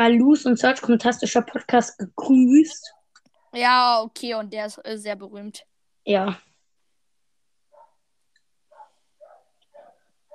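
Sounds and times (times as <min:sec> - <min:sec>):
speech: 0:00.0 - 0:03.0, 0:03.6 - 0:06.5
dogs barking: 0:07.7 - 0:08.0, 0:08.7 - 0:10.3.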